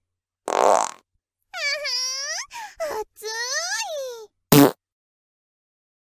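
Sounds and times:
farts in a farting contest: 0.5s - 1.0s, 4.5s - 4.8s.

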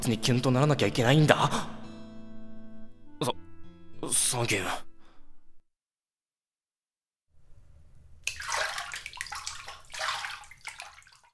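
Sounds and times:
speech: 0.0s - 1.8s, 4.4s - 4.8s
hot bath water sloshing as a person soaks in a bathtub: 8.2s - 11.3s.

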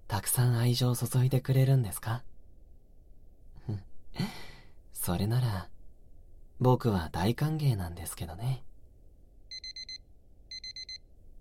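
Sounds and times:
faint low hiss: 0.0s - 11.3s
speech: 0.1s - 2.3s, 3.7s - 4.4s, 5.0s - 5.7s, 6.6s - 8.7s
alarm clock beeping: 9.5s - 11.0s.

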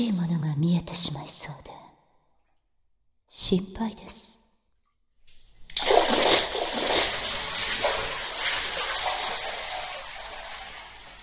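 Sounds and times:
speech: 0.0s - 1.7s, 3.3s - 4.3s
hot bath water splashing and sloshing: 5.3s - 11.2s.

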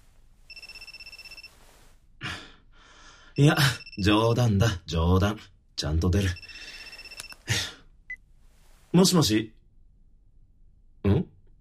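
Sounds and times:
phone ringtone for an incoming call from a withheld number: 0.5s - 1.6s, 6.3s - 7.3s
speech: 3.4s - 6.5s, 9.0s - 9.6s.

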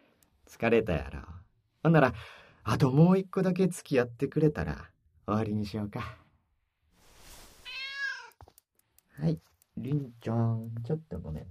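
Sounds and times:
speech: 0.5s - 6.2s, 9.2s - 11.4s
cat meowing: 7.6s - 8.4s.

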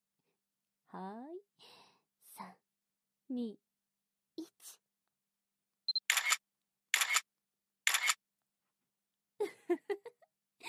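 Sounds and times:
speech: 3.3s - 3.6s
camera shutter clicking: 6.1s - 6.4s, 7.0s - 7.3s, 7.9s - 8.2s.

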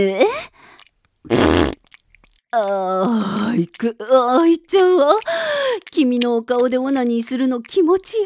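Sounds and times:
speech: 0.0s - 0.5s, 1.2s - 1.7s, 2.5s - 8.2s
loud buzzy fart: 1.3s - 1.9s.

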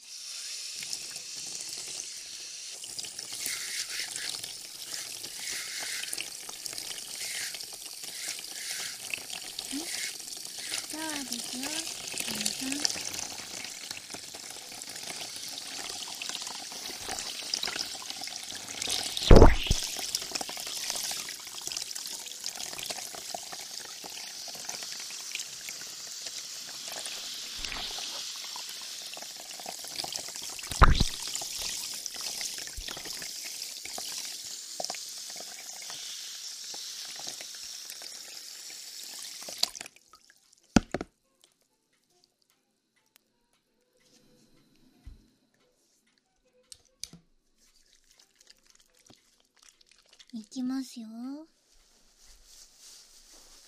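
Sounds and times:
hissing spray of running shower water: 0.0s - 40.2s
brief sharp knock: 19.3s - 19.9s, 30.7s - 31.2s
speech: 50.6s - 51.5s.

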